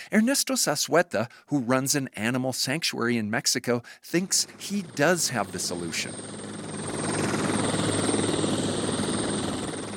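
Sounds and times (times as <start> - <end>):
speech: 0.1 - 6.6
helicopter flying overhead: 4.2 - 9.9.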